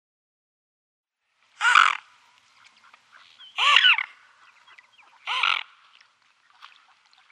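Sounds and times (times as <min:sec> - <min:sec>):
mute swan giving nasal honking calls: 0:01.6 - 0:07.3.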